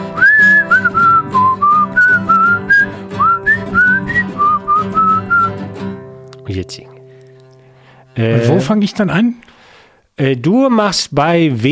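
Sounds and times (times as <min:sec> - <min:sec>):
person whistling a tune: 0:00.0 - 0:05.6
steady instrumental accompaniment: 0:00.0 - 0:08.8
speech: 0:06.7 - 0:06.9, 0:08.2 - 0:09.5, 0:10.2 - 0:11.7.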